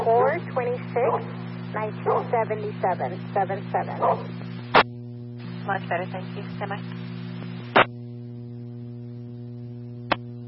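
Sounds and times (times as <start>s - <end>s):
steady low hum: 0.0s - 10.4s
speech: 0.1s - 4.8s, 5.6s - 7.1s
dog barking in short yapping bursts: 1.1s - 1.3s, 2.1s - 2.3s, 4.0s - 4.3s.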